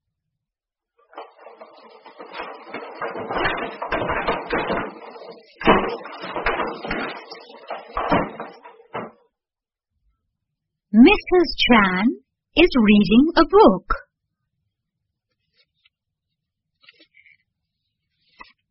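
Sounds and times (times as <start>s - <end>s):
dishes clattering and clinking as they are washed and dried: 1.2s - 9.2s
speech: 5.5s - 7.4s, 11.0s - 13.9s.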